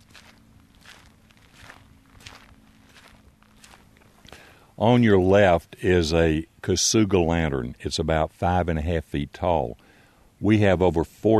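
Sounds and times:
footsteps walking along a path through a Japanese hill and pond stroll garden: 0.0s - 5.6s
faint steady hum: 0.0s - 11.3s
speech: 4.8s - 11.3s.

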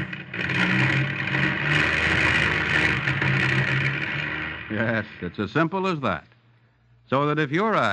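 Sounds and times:
car engine running: 0.0s - 6.2s
speech: 4.8s - 6.3s, 7.1s - 7.9s.

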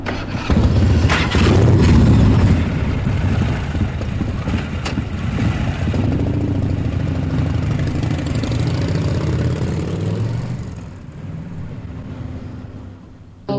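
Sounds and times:
motorcycle engine rumbling: 0.0s - 13.4s.

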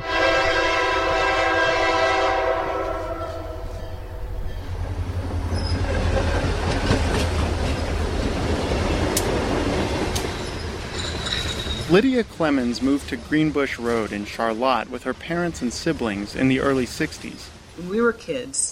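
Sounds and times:
train horn blaring: 0.0s - 4.6s
rail cars rolling past: 0.0s - 18.2s
speech: 11.9s - 18.7s.

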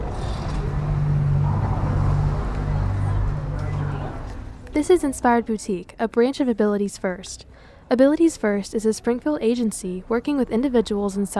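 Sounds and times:
passing cars on Walnut Street in Springfield Missouri: 0.0s - 5.5s
indistinct murmur of crowds during an art walk: 0.0s - 11.3s
speech: 4.8s - 11.3s.

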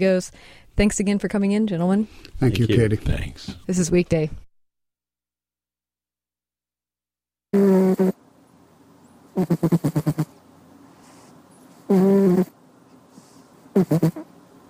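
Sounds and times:
speech: 0.0s - 4.4s, 9.4s - 10.3s, 11.9s - 12.6s, 13.8s - 14.2s
cat snoring while asleep on the end of a desk: 9.4s - 10.3s, 11.9s - 12.5s, 13.8s - 14.3s.

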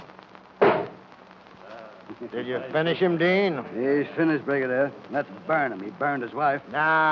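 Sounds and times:
gunshots from two guns: 0.6s - 0.9s
speech: 2.2s - 7.0s.

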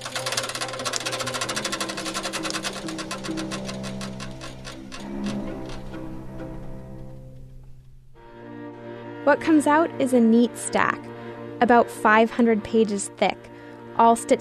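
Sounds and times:
book-sewing machine punching and stitching signatures with needles and thread: 0.0s - 6.6s
speech: 9.3s - 14.4s.

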